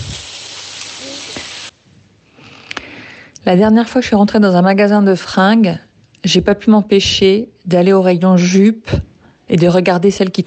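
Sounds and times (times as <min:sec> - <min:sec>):
enormous Argentine-style steak sizzling: 0:00.0 - 0:01.8
speech: 0:03.4 - 0:10.4.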